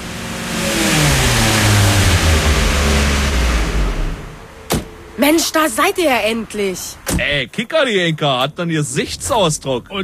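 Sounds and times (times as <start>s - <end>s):
car engine revving as the car pulls in: 0.0s - 7.4s
speech: 5.3s - 10.0s.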